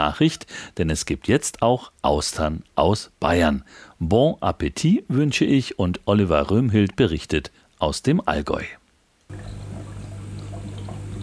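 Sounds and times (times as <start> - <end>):
speech: 0.0 - 9.6
circulation pumps humming in an oyster farming hall: 9.3 - 11.2
filtered water splashing into large high-salinity tanks in a factory hall: 9.3 - 11.2.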